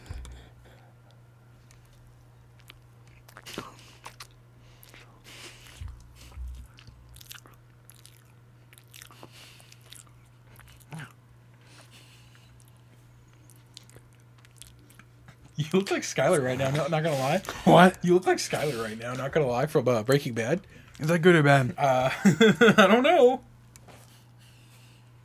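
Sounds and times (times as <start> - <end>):
person biting and chewing cake: 0.0 - 18.0, 20.0 - 21.2
steady low hum: 0.0 - 25.2
speech: 15.7 - 23.5
laughter: 21.8 - 23.2.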